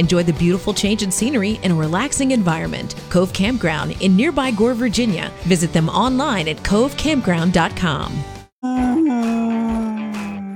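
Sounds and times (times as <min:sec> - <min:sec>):
speech: 0:00.0 - 0:08.9
dog howling: 0:08.6 - 0:10.5.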